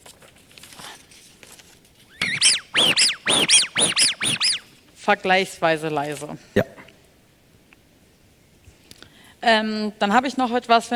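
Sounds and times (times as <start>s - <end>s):
rubber duck squeaking when squeezed: 2.2s - 4.7s
speech: 5.1s - 6.8s, 9.5s - 10.9s.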